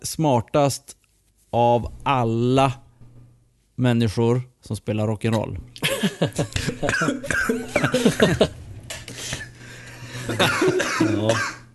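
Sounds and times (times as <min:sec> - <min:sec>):
speech: 0:00.0 - 0:02.8, 0:03.8 - 0:08.6, 0:10.3 - 0:11.6
laughter: 0:05.8 - 0:08.6, 0:10.2 - 0:11.3
person coughing after choking on something: 0:06.6 - 0:08.4, 0:10.3 - 0:11.7
person breathing: 0:09.1 - 0:10.4.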